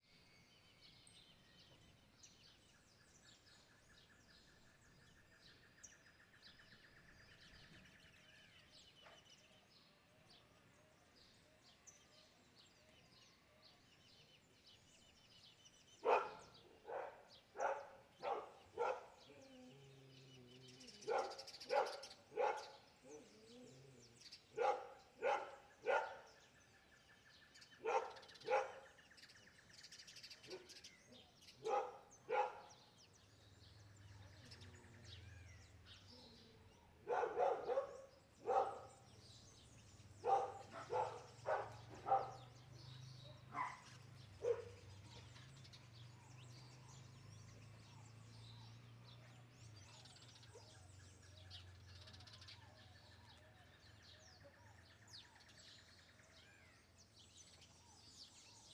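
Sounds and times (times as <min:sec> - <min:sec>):
dog barking on a farm: 0:16.0 - 0:26.5, 0:27.8 - 0:29.0, 0:30.4 - 0:33.0, 0:36.2 - 0:39.2, 0:40.2 - 0:42.6, 0:43.2 - 0:45.4, 0:49.8 - 0:50.8.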